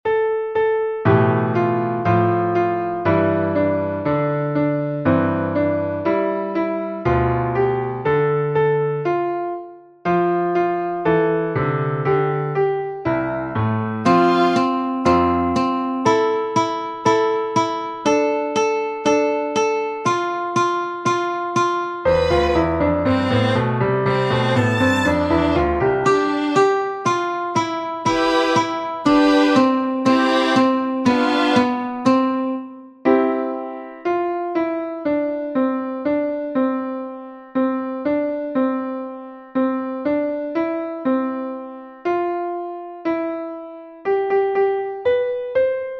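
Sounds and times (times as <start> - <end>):
piano: 0.0 - 45.9
violin: 14.1 - 14.8, 22.1 - 27.2, 28.1 - 32.2
ukulele: 28.1 - 32.3.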